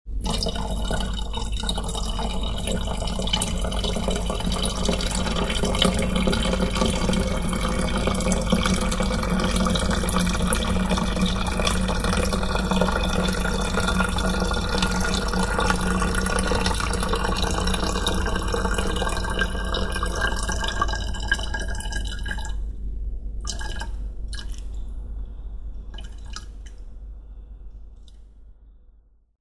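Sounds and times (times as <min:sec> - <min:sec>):
urinating into a jar: 0:00.1 - 0:22.7, 0:23.4 - 0:24.9, 0:25.8 - 0:26.9.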